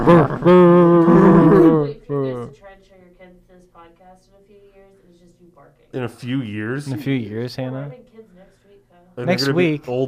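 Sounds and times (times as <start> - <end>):
person imitating dog barking: 0.0 - 2.5
speech: 0.1 - 2.0, 3.9 - 8.3, 9.2 - 10.0.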